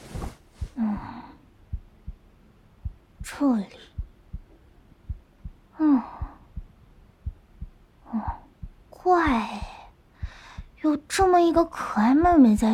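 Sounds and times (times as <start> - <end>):
heartbeat heard through a stethoscope on a man's chest: 0.0 - 12.7
woman breathing in short bursts: 0.6 - 1.5, 5.7 - 6.7, 9.6 - 10.8
woman speaking softly: 3.2 - 4.0, 8.1 - 9.9, 10.8 - 12.7
speech: 3.3 - 3.9, 11.2 - 12.7.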